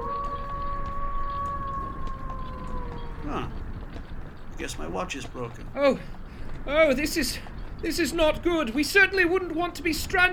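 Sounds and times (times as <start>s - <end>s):
wolf howling: 0.0s - 4.0s
low rumble: 0.0s - 5.8s
speech: 4.6s - 10.3s.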